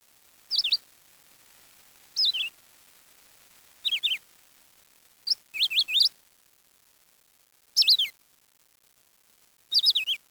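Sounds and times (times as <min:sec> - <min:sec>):
background hiss: 0:00.0 - 0:10.2
bird chirps: 0:00.5 - 0:00.8, 0:02.2 - 0:02.5, 0:03.8 - 0:04.2, 0:05.3 - 0:06.1, 0:07.8 - 0:08.1, 0:09.7 - 0:10.2.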